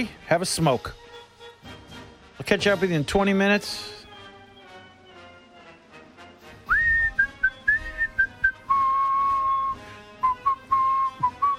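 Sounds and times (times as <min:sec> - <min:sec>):
speech: 0:00.0 - 0:01.0, 0:02.4 - 0:04.0
person whistling a slow melody: 0:06.6 - 0:11.5.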